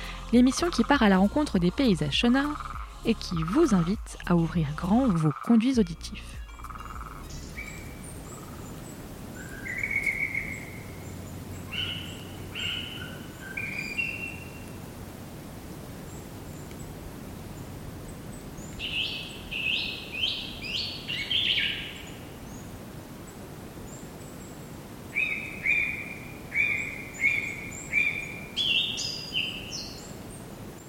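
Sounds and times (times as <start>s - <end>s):
soft steady hiss: 0.0s - 30.8s
speech: 0.3s - 6.4s
bird singing whistled notes outdoors: 4.7s - 14.8s, 16.1s - 22.7s, 23.9s - 30.8s.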